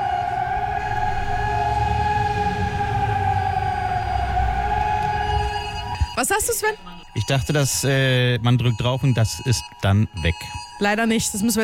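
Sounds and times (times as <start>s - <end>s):
rumbling low background of outdoor noise: 0.0s - 7.0s
steady warning siren wailing across the city: 0.0s - 11.6s
speech: 6.2s - 11.6s.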